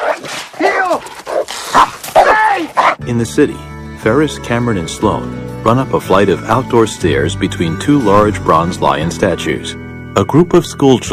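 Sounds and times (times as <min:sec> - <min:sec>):
dog barking and yelping while chasing a person across a backyard: 0:00.0 - 0:03.0
speech: 0:03.1 - 0:11.1.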